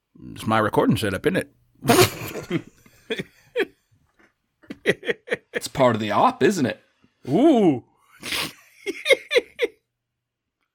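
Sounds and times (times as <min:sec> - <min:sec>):
speech: 0:00.4 - 0:03.3, 0:05.8 - 0:08.4
laughter: 0:01.9 - 0:03.8, 0:04.6 - 0:05.8, 0:08.2 - 0:09.8
person sneezing sharply: 0:08.2 - 0:08.6.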